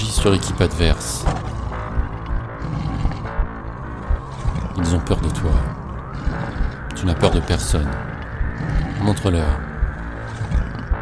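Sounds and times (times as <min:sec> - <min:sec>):
deep rumbling roar with gravelly low pulses: 0:00.0 - 0:11.0
speech: 0:00.2 - 0:01.4, 0:04.8 - 0:05.8, 0:07.0 - 0:09.7.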